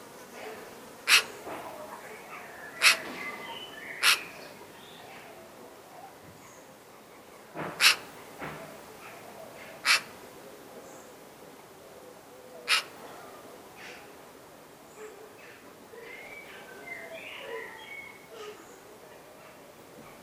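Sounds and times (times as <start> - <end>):
Eurasian magpie Pica pica giving harsh rasping notes: 1.0 - 1.4, 2.3 - 4.4, 7.7 - 8.1, 9.6 - 10.2, 12.7 - 13.0
soft calls of other birds: 1.1 - 10.2, 12.4 - 14.2, 14.9 - 20.2.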